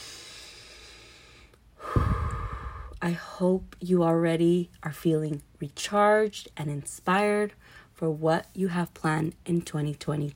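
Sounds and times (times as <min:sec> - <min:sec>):
deep breath during a guided mindset exercise: 0:00.0 - 0:03.0
soft steady hiss: 0:00.0 - 0:10.3
speech: 0:03.0 - 0:10.3.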